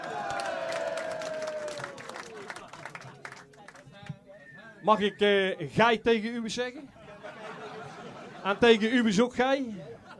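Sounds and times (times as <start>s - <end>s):
crowd applauding and cheering: 0.0s - 3.8s
laughter: 2.1s - 3.5s, 7.0s - 9.1s, 9.7s - 10.1s
drawn-out descending whistle: 4.3s - 5.4s
speech: 4.8s - 7.0s, 8.4s - 10.1s.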